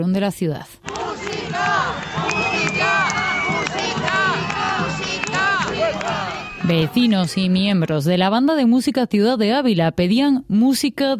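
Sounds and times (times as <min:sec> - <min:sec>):
speech: 0:00.0 - 0:02.9, 0:06.6 - 0:11.1
large crowd booing and jeering: 0:00.8 - 0:07.5
many overlapping voices shouting: 0:00.9 - 0:07.3
sharp whistles: 0:01.6 - 0:06.9.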